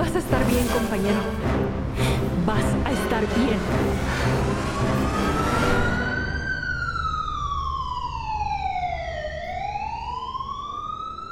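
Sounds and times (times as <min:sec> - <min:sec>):
speech: 0:00.2 - 0:01.8, 0:02.4 - 0:05.9
ambulance siren wailing: 0:03.6 - 0:11.3.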